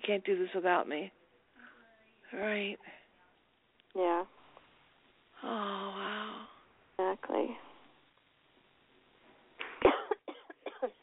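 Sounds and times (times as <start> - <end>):
speech: 0.1 - 1.2, 2.3 - 3.0, 3.9 - 4.4, 5.4 - 6.0, 7.1 - 7.7
person coughing: 9.8 - 11.0.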